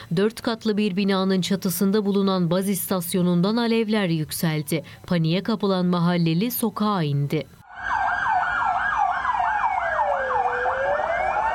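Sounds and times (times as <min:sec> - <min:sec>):
speech: 0:00.1 - 0:08.0
emergency sirens from fire engines, ambulances and police cars: 0:07.6 - 0:11.5.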